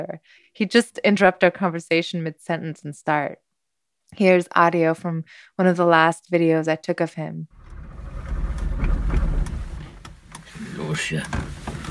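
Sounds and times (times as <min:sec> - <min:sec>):
speech: 0:00.0 - 0:03.4, 0:04.1 - 0:07.6, 0:10.9 - 0:11.6
brief whining tone: 0:07.6 - 0:10.4
old East German car engine starting and rumbling unevenly: 0:07.6 - 0:11.8.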